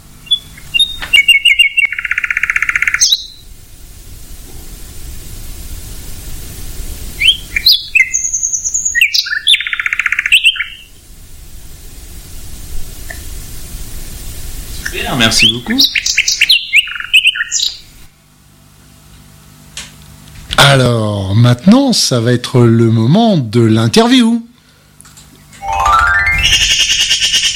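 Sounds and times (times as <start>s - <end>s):
steady hissing background: 0.0s - 27.5s
virtuoso night singer songbird singing: 0.2s - 3.4s, 7.2s - 10.9s, 15.4s - 17.8s
speech: 15.2s - 16.0s, 20.7s - 24.5s.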